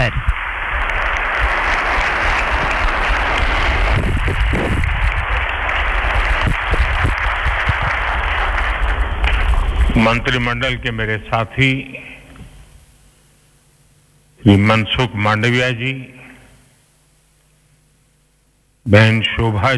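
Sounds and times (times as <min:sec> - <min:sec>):
loud applause from a large crowd welcoming a speaker: 0:00.0 - 0:10.8
speech: 0:00.1 - 0:00.3, 0:10.0 - 0:12.0, 0:14.4 - 0:16.2, 0:18.8 - 0:19.7.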